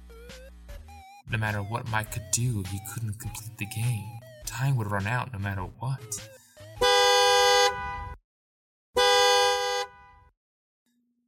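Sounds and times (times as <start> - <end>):
speech: 1.3 - 6.9
arcade machine distant car horn honking: 6.8 - 8.2, 9.0 - 10.3.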